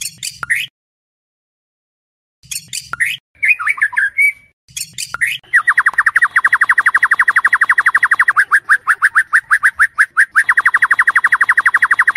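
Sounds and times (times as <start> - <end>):
white-rumped shama singing chattering notes and whistled trill: 2.4 - 12.1.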